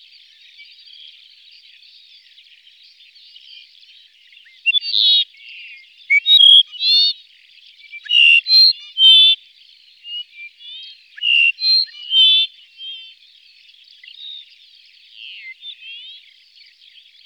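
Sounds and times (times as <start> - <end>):
Dupont's lark calling with nasal whistled notes: 4.6 - 7.2, 8.0 - 9.4, 10.2 - 13.1.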